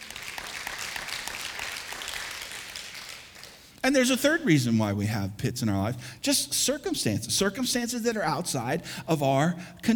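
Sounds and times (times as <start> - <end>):
large group applauding: 0.0 - 3.6
speech: 3.8 - 9.9.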